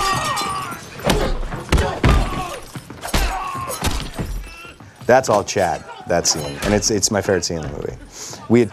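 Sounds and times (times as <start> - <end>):
thrown knives striking targets in a violent film fight scene: 0.0 - 4.4
speech: 5.1 - 8.7.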